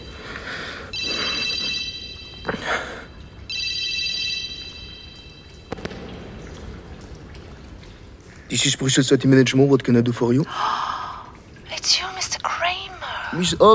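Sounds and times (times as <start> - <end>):
office telephone ringing in long electronic trills: 1.0 - 2.5, 3.5 - 5.4
speech: 8.5 - 10.8, 13.4 - 13.7.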